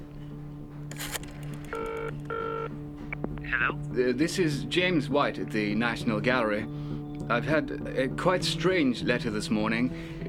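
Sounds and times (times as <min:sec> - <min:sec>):
telephone dialing clicks: 0:00.9 - 0:02.7
speech: 0:03.5 - 0:10.2.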